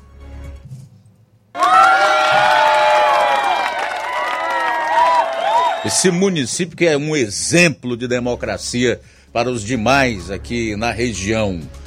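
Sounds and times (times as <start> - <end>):
many voices shouting and whooping: 1.6 - 6.3
crowd applauding: 1.6 - 6.5
speech: 5.8 - 11.8.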